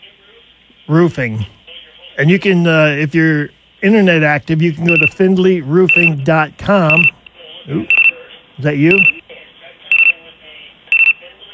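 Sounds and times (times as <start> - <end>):
speech: 0.9 - 1.6, 2.2 - 8.0, 8.6 - 9.2
clock beeping with high-pitched electronic beeps: 4.8 - 5.2, 5.8 - 7.2, 7.8 - 8.2, 8.8 - 9.2, 9.9 - 10.1, 10.9 - 11.2.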